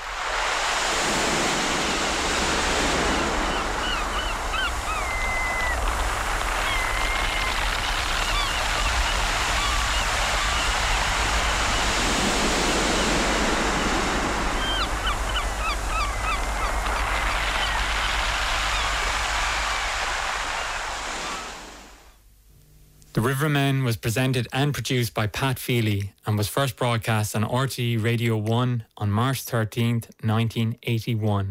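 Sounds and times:
river water flowing into the sea: 0:00.0 - 0:22.1
faint bird calls: 0:03.3 - 0:12.0, 0:12.9 - 0:21.7
speech: 0:23.3 - 0:31.4.

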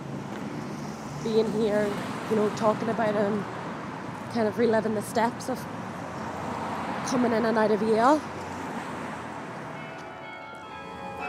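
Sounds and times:
steady outdoor background: 0:00.0 - 0:11.2
speech: 0:01.2 - 0:03.6, 0:04.3 - 0:05.8, 0:07.1 - 0:08.3
church bells tolling: 0:09.6 - 0:11.2.

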